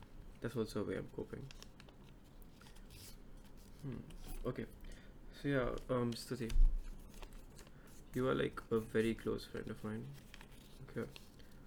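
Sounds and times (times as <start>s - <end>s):
speech: 0.4s - 1.7s, 3.8s - 4.8s, 5.4s - 6.7s, 8.1s - 11.2s
paper rustling and crinkling while folding paper cranes: 0.9s - 4.5s, 5.6s - 11.6s.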